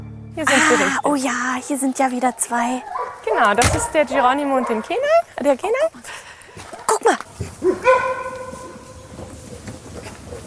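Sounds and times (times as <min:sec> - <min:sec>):
speech: 0:00.4 - 0:06.3
wolf barking as a warning call: 0:01.5 - 0:05.3, 0:06.6 - 0:10.4.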